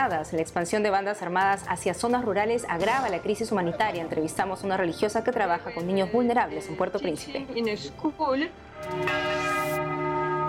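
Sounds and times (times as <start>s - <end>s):
speech: 0.0s - 9.4s
church bells ringing: 8.8s - 10.4s.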